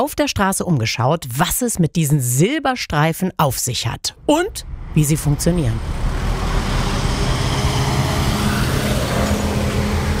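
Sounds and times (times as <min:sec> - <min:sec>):
speech: 0:00.0 - 0:06.1
cars rumbling past on a busy street: 0:04.5 - 0:10.1.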